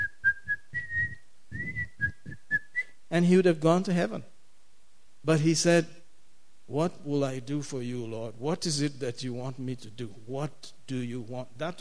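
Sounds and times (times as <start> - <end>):
person whistling a short lilting tune: 0.0 - 3.0
speech: 3.1 - 4.3, 5.2 - 6.0, 6.7 - 11.7.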